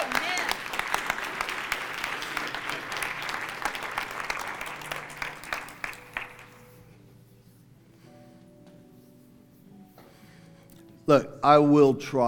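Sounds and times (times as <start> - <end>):
congregation applause: 0.0 - 6.8
speech: 11.1 - 12.2.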